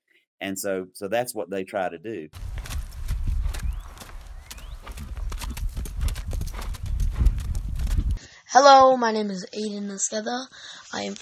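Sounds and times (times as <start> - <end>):
speech: 0.4 - 2.6, 8.6 - 11.1
horse hooves clip-clopping: 2.4 - 8.2.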